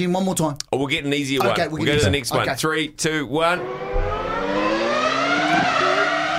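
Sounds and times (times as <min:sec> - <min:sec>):
speech: 0:00.0 - 0:03.9
Formula 1 race car engine screaming at high revs: 0:03.4 - 0:06.3.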